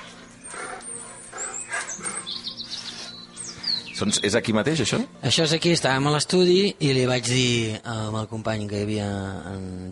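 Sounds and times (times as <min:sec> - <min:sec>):
birds chirping and tweeting outdoors: 0:00.0 - 0:05.7
speech: 0:04.0 - 0:09.8.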